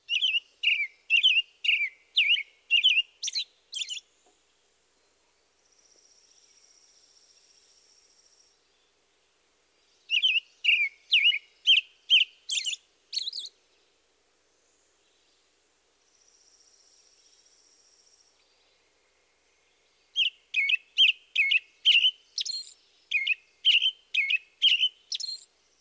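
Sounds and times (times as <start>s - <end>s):
robin singing: 0.0s - 5.2s, 8.6s - 14.0s, 19.8s - 25.7s.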